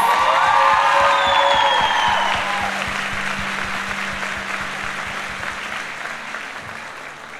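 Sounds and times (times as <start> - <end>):
whistles and whoops: 0.0 - 3.2
crowd clapping: 0.0 - 7.3.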